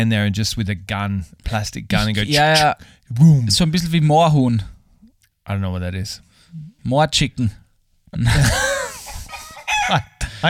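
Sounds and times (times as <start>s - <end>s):
speech: 0.0s - 4.7s, 5.5s - 8.7s, 9.9s - 10.4s
rooster crowing: 9.3s - 10.1s.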